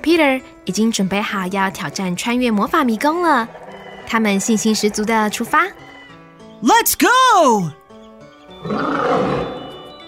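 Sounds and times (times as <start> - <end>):
speech: 0.0 - 5.8, 6.6 - 7.8, 8.6 - 9.4
lion roaring: 2.7 - 6.2, 8.6 - 9.8.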